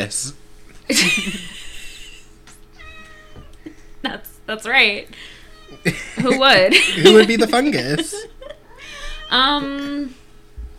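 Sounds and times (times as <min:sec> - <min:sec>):
speech: 0:00.0 - 0:01.6, 0:04.0 - 0:08.4, 0:09.3 - 0:10.2
faint low hum: 0:00.0 - 0:10.7
laughter: 0:00.9 - 0:02.4, 0:05.7 - 0:08.8
cat meowing: 0:02.8 - 0:03.6, 0:05.4 - 0:06.0, 0:08.7 - 0:09.7.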